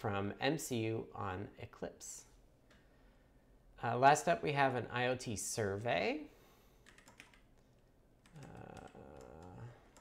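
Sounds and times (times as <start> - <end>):
speech: 0.0 - 2.3, 3.8 - 6.3
low hum: 0.0 - 9.9
typing on a computer keyboard: 6.8 - 9.9.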